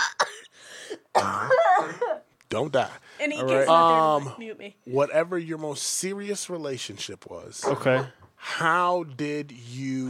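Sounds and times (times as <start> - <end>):
person clearing throat: 1.1 - 2.1
person coughing harshly: 1.1 - 2.2
speech: 1.2 - 1.5, 2.5 - 10.0.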